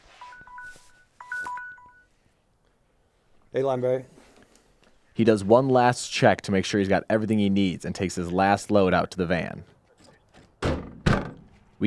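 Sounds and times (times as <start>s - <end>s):
mobile phone ringing with an electronic tone pattern: 0.1s - 2.2s
speech: 3.6s - 4.2s, 5.2s - 9.8s.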